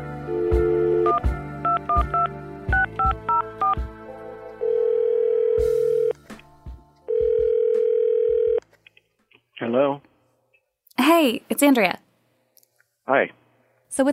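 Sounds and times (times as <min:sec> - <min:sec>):
telephone ringback tones: 0:00.3 - 0:03.8, 0:04.6 - 0:06.1, 0:07.1 - 0:08.6
thumping beat: 0:01.2 - 0:03.9, 0:06.6 - 0:07.9
speech: 0:11.2 - 0:12.0, 0:13.1 - 0:14.1.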